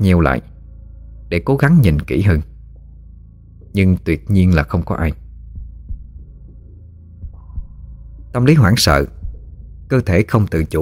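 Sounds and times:
speech: 0:00.0 - 0:00.5, 0:01.3 - 0:02.5, 0:03.7 - 0:05.2, 0:08.4 - 0:09.2, 0:09.9 - 0:10.8
low steady hum: 0:00.0 - 0:10.8
heart pounding in a heavy irregular beat: 0:05.3 - 0:10.1.

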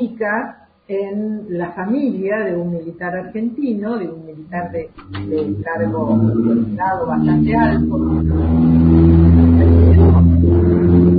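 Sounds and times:
speech: 0:00.1 - 0:11.1
car passing outside a house with low engine rumble: 0:04.7 - 0:11.1.

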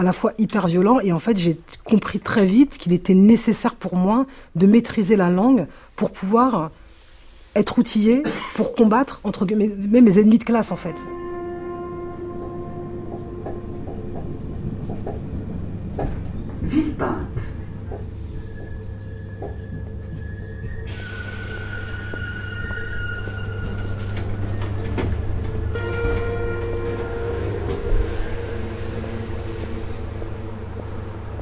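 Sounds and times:
speech: 0:00.0 - 0:06.8, 0:07.6 - 0:11.2
train rumbling at a suburban railway station: 0:09.4 - 0:31.3
train metallic squeals and clatter: 0:18.2 - 0:31.3.

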